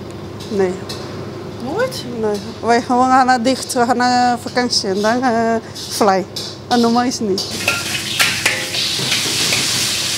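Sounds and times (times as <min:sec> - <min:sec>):
speech: 0:00.5 - 0:01.0, 0:01.6 - 0:07.7
metallic utensils clattering against pans: 0:04.6 - 0:10.1
food sizzling and stirred in two pans: 0:07.3 - 0:10.1.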